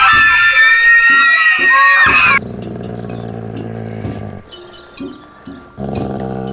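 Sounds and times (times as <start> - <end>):
group of girls shrieking and shouting: 0.0 - 2.4.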